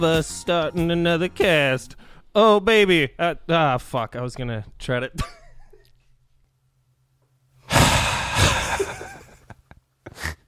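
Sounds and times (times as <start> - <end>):
speech: 0.0 - 5.4
person breathing in through the nose: 7.7 - 8.9
sharp nasal puff: 7.7 - 8.9.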